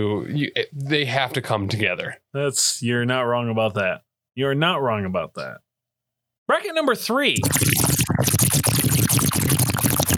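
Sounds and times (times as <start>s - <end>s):
speech: 0.0s - 5.6s, 6.5s - 9.3s
water bubbling through a bong: 7.4s - 10.1s.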